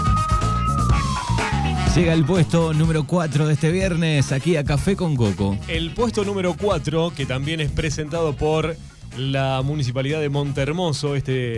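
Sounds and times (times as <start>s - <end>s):
police car siren wailing: 0.0s - 2.9s
speech: 2.0s - 11.5s.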